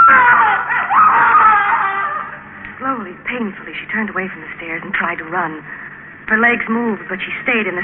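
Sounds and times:
woman screaming in terror: 0.0 - 2.4
speech: 3.3 - 7.8.

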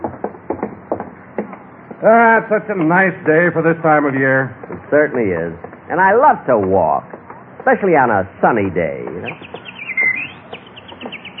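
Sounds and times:
bird chirping on a lawn: 1.1 - 11.3
speech: 2.0 - 9.5
whistled bird note: 9.3 - 11.3.

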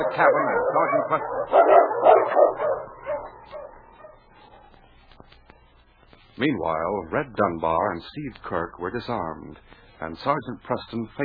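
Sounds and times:
speech: 0.0 - 2.9, 6.4 - 11.2
team of sled dogs barking and yipping: 0.0 - 5.1.

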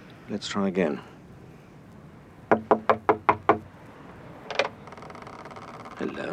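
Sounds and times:
speech: 0.3 - 1.1, 6.1 - 6.3
loud firm knocks on a wooden door: 2.5 - 3.7
unlocked door rattling as it is tried or pushed: 2.5 - 3.7, 4.4 - 6.3.

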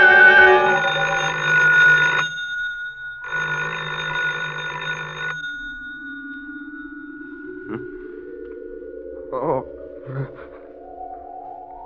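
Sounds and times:
telephone at home ringing in buzzy bursts: 0.2 - 8.4
low rising electronic tone: 5.6 - 11.8.

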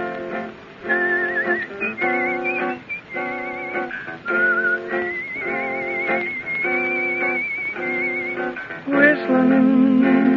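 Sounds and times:
steady rhythmic musical accompaniment: 0.0 - 10.3
person whistling a lilting cowboy-style melody: 0.8 - 8.6.

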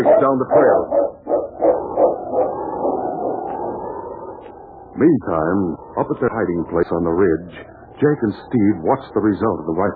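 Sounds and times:
speech: 0.0 - 1.1, 5.0 - 9.9
massive dog barking beside a snowy ravine: 0.0 - 3.1.

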